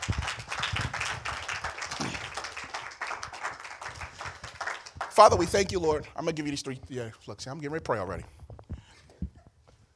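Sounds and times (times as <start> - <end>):
audience clapping hands: 0.0 - 5.9
speech: 5.2 - 8.4.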